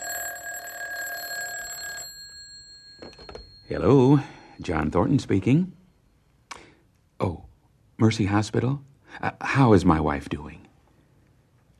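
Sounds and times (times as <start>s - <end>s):
telephone ringing in a house: 0.0s - 4.8s
speech: 3.7s - 5.8s, 8.0s - 10.6s.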